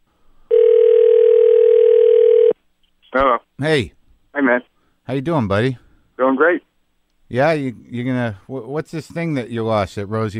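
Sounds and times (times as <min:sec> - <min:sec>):
telephone dial tone while placing a call: 0:00.5 - 0:02.6
speech: 0:03.6 - 0:05.8, 0:06.4 - 0:06.6, 0:07.3 - 0:10.3.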